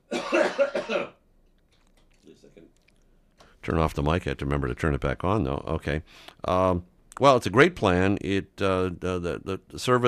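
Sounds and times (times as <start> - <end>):
harsh coughs: 0.0 - 1.2
speech: 3.7 - 10.0.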